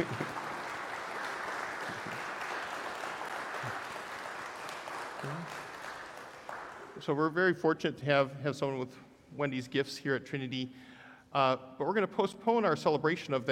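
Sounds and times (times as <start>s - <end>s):
church audience applauding: 0.0s - 7.1s
speech: 7.1s - 13.5s.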